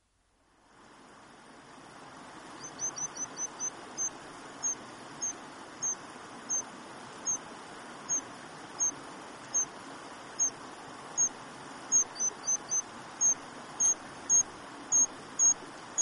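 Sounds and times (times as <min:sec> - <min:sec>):
steady background hiss: 0:00.0 - 0:16.0
white-throated dipper giving high zit calls: 0:02.6 - 0:07.4, 0:08.1 - 0:09.7, 0:10.4 - 0:10.6, 0:11.9 - 0:16.0.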